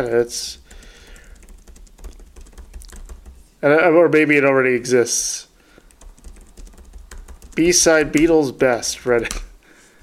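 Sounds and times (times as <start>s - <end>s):
speech: 0.0s - 0.6s, 3.6s - 5.5s, 7.6s - 9.5s
keyboard typing as someone writes a note: 0.5s - 3.5s, 5.8s - 8.4s.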